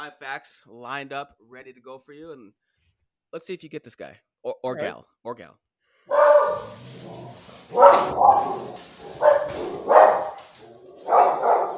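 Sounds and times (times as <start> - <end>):
speech: 0.0 - 2.7, 3.3 - 10.0
dogs barking at a neighbor: 6.1 - 11.7.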